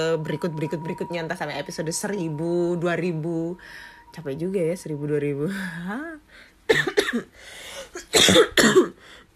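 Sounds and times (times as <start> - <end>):
voiced hum: 0.0 - 8.9
speech: 0.0 - 9.2
person having a coughing fit: 6.7 - 9.1.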